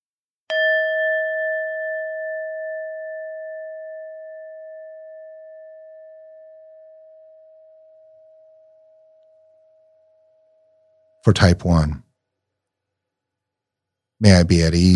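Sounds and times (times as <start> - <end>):
meditation bell struck for a guided breathing meditation: 0.5 - 10.8
speech: 11.2 - 12.0, 14.2 - 14.9.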